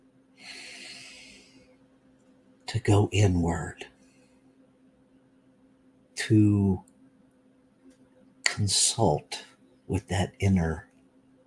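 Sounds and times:
person taking a slow breath during a guided breathing moment: 0.4s - 1.7s
speech: 2.7s - 3.9s, 6.3s - 6.9s, 8.6s - 10.9s.

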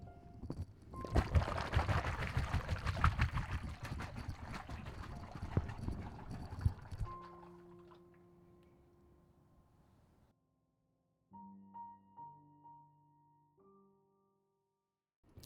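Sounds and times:
water glugging and splashing from a rubber hot water bottle being emptied and refilled: 0.4s - 8.1s.

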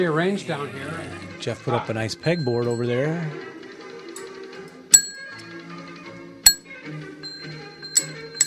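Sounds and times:
speech: 0.0s - 3.5s
small bell struck: 2.2s - 3.4s, 4.9s - 5.6s, 6.5s - 8.4s.

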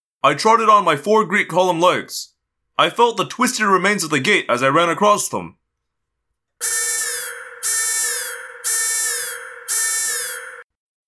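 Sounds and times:
speech: 0.2s - 5.6s, 6.6s - 6.9s
loud electronic alarm buzzing: 6.6s - 10.6s.

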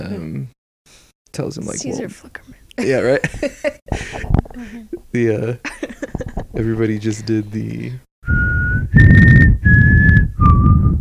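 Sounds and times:
speech: 0.1s - 0.6s, 1.4s - 5.9s, 6.5s - 9.2s
breathy rumbling background: 0.9s - 11.0s
laughter: 1.7s - 8.0s
person whistling sustained notes into a microphone: 8.3s - 11.0s.

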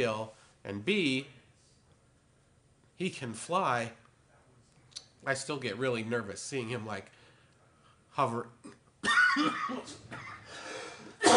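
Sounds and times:
speech: 0.0s - 1.4s, 3.0s - 4.0s, 5.2s - 7.2s, 8.2s - 10.6s
harsh cough: 8.6s - 11.3s.

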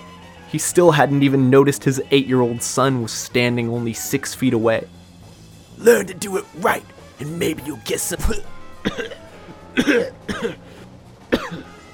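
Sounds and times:
speech: 0.5s - 5.0s, 5.8s - 9.2s, 9.8s - 10.7s
man coughing hard in a rough burst: 5.8s - 10.6s, 11.3s - 11.6s.

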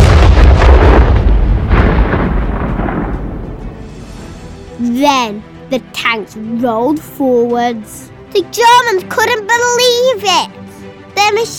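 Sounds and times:
huge explosion with deep rumbling roar: 0.0s - 4.8s
speech: 5.0s - 10.6s, 11.2s - 11.5s.

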